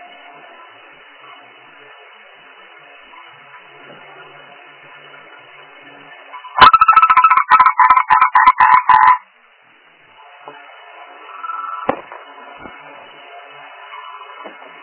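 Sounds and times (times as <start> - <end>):
frog giving loud pulsed croaks: 6.6 - 9.2.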